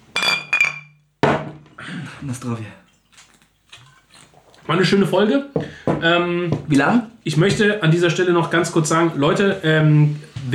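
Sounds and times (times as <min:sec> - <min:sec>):
glasses clinking in a toast: 0:00.0 - 0:01.0
speech: 0:01.9 - 0:02.8, 0:04.7 - 0:10.5.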